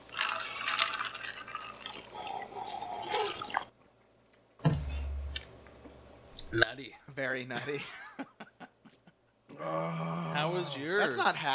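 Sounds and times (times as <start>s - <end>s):
person gulping down a drink: 0.1s - 3.7s
speech: 6.5s - 8.0s, 9.6s - 11.5s
laughter: 7.5s - 9.2s, 10.6s - 11.5s.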